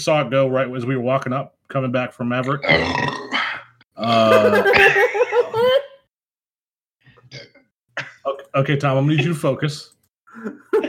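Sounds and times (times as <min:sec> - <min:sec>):
speech: 0:00.0 - 0:03.4, 0:04.0 - 0:05.0, 0:08.5 - 0:10.7
small throaty gurgling burps: 0:02.5 - 0:03.7
laughter: 0:04.0 - 0:06.0, 0:10.3 - 0:10.8.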